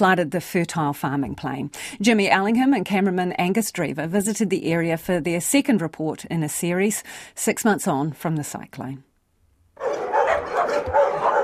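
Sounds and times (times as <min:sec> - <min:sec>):
speech: 0:00.0 - 0:09.1
many dogs barking at a boarding kennel: 0:09.8 - 0:11.4.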